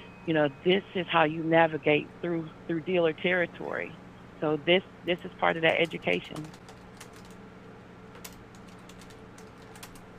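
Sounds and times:
low steady hum: 0:00.0 - 0:10.1
speech: 0:00.2 - 0:06.6
typing on a computer keyboard: 0:05.8 - 0:07.4, 0:08.2 - 0:10.1.

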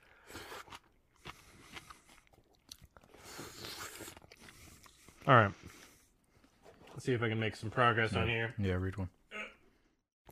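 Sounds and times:
chewing and munching food into microphone: 0:00.0 - 0:07.0
speech: 0:05.3 - 0:05.6, 0:07.0 - 0:09.2.

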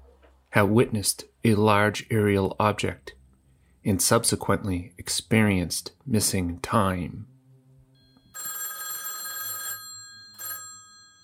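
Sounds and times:
speech: 0:00.6 - 0:03.2, 0:03.8 - 0:07.3
old-style telephone bell ringing: 0:08.0 - 0:11.2.

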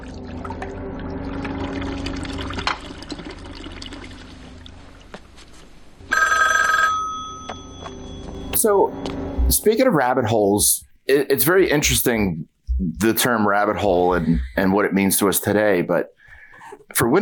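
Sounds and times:
splashing pouring water: 0:00.0 - 0:05.1
telephone bell ringing: 0:06.1 - 0:08.4
speech: 0:08.6 - 0:16.2, 0:16.9 - 0:17.2.

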